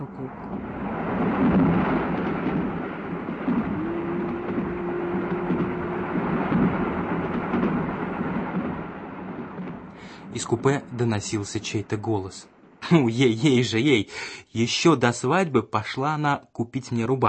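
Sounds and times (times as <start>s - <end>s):
low sustained hum: 0.0s - 13.6s
train rumbling along the rails: 0.0s - 13.8s
speech: 10.3s - 17.2s.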